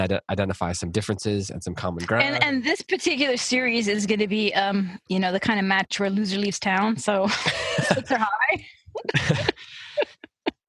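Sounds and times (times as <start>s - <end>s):
laughter: 0.0s - 2.8s, 7.2s - 10.6s
speech: 0.0s - 9.8s
throaty cough from a chest cold: 7.4s - 8.3s.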